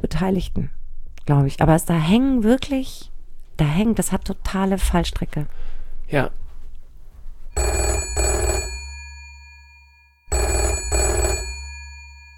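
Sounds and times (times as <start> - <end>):
speech: 0.2 - 6.4, 7.6 - 7.9
telephone ringing with buzzing double-pulse rings: 7.6 - 12.3.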